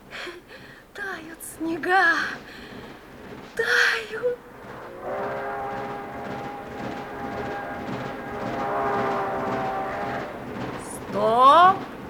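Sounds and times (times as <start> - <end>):
moving train rumbling: 0.0 - 12.0
speech: 1.3 - 2.5, 3.6 - 4.4
long sustained train horn-like tone: 4.4 - 12.0.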